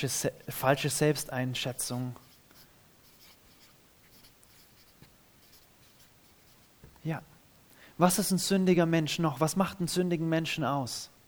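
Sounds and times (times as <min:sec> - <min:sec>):
speech: 0:00.0 - 0:02.2, 0:07.0 - 0:07.3, 0:08.0 - 0:11.1
writing on paper: 0:01.8 - 0:06.9.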